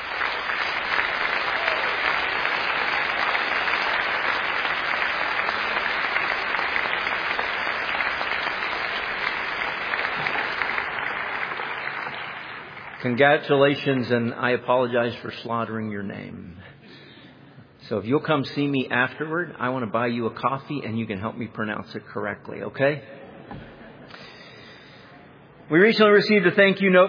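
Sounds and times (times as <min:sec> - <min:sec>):
large audience applauding after an awards announcement: 0:00.0 - 0:13.7
speech: 0:13.0 - 0:16.6, 0:17.9 - 0:23.6, 0:25.7 - 0:27.0.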